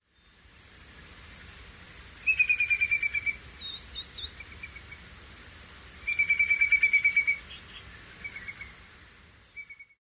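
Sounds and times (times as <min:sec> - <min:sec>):
green sandpiper calling at night: 0:02.2 - 0:04.9, 0:06.0 - 0:08.7.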